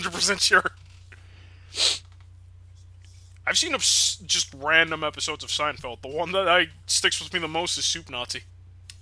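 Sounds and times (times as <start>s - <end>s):
speech: 0.0s - 0.8s, 1.7s - 2.0s, 3.5s - 9.0s
steady low electrical hum: 0.0s - 9.0s
person sneezing: 1.7s - 2.1s.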